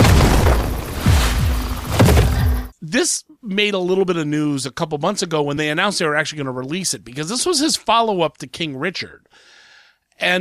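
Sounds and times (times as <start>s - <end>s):
heavy cannon fire from an army: 0.0s - 2.7s
speech: 2.9s - 9.5s, 10.2s - 10.3s.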